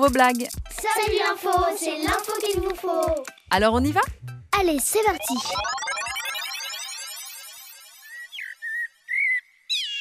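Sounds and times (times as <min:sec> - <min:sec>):
speech: 0:00.0 - 0:05.8
common blackbird singing: 0:08.1 - 0:09.9.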